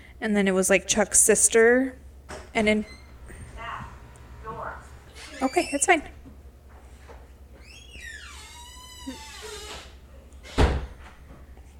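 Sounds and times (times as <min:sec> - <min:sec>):
speech: 0:00.2 - 0:02.0, 0:02.6 - 0:03.0, 0:05.4 - 0:06.2
door creaking open with squealing hinges: 0:02.5 - 0:06.1, 0:07.6 - 0:11.1.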